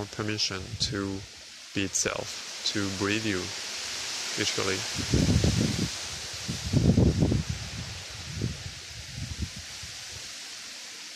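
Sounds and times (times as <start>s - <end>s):
speech: 0.0s - 3.7s, 4.4s - 5.5s
outdoor wind gusting in low rumbling buffets: 0.0s - 10.3s
soft rustle of leaves: 0.0s - 11.1s.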